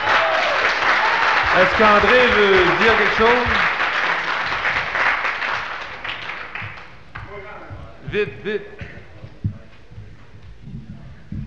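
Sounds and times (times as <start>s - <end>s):
audience applauding: 0.0s - 7.4s
speech: 1.6s - 3.7s, 8.1s - 8.8s.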